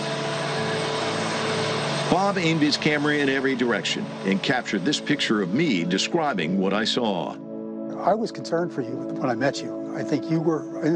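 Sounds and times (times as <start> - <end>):
helicopters flying overhead: 0.0 - 7.4
speech: 2.1 - 7.4, 8.0 - 10.9.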